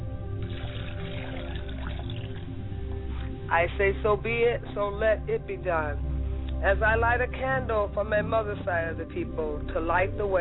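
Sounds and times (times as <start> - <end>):
low hum: 0.0 - 10.3
water pouring into a glass: 0.4 - 3.4
speech: 3.5 - 10.3.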